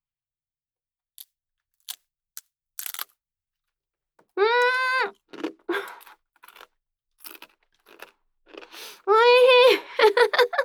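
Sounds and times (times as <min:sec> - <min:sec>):
crunchy chewing of food: 0:02.8 - 0:03.1, 0:04.6 - 0:09.1
laughter: 0:09.4 - 0:10.6.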